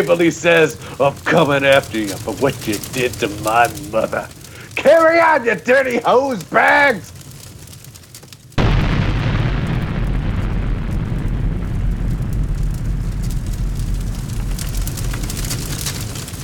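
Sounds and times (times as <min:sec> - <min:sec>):
speech: 0:00.0 - 0:07.2
German bunker explosion with sustained roaring rumble: 0:08.6 - 0:16.4.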